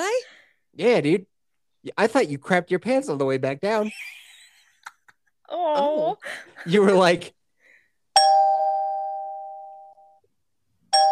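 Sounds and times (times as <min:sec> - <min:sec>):
speech: 0:00.8 - 0:04.2, 0:05.5 - 0:07.4
electronic doorbell chime: 0:08.2 - 0:10.2, 0:10.9 - 0:11.1.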